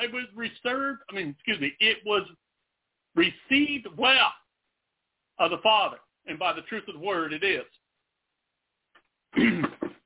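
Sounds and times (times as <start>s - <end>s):
speech: 0.1s - 2.5s, 3.2s - 4.4s, 5.4s - 7.8s, 9.3s - 10.0s
throat clearing from an itchy throat: 9.4s - 10.0s.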